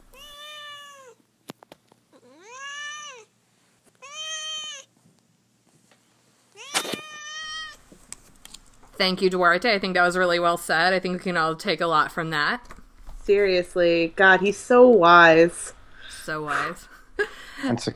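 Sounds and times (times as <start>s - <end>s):
cat meowing: 0.1s - 1.2s, 2.2s - 3.3s, 4.0s - 4.9s, 6.6s - 7.8s
speech: 9.0s - 12.7s, 13.3s - 16.9s, 17.6s - 17.9s.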